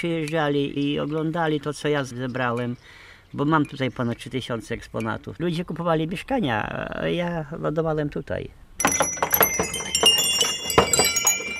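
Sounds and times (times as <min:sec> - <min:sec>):
speech: 0:00.0 - 0:09.1
small bells on a horse's collar harness jingling: 0:08.8 - 0:11.5.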